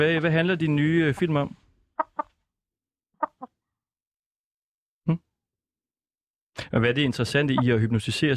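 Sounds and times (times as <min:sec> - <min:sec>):
speech: 0:00.0 - 0:01.6, 0:05.1 - 0:05.3, 0:06.7 - 0:08.3
hen clucking close to the microphone: 0:02.0 - 0:02.3, 0:03.2 - 0:03.5, 0:07.4 - 0:07.8.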